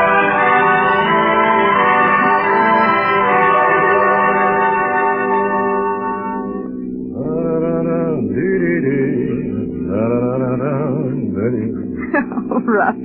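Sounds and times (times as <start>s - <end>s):
soft continuous drone: 0.1s - 13.0s
woman humming a wandering tune: 11.4s - 13.0s.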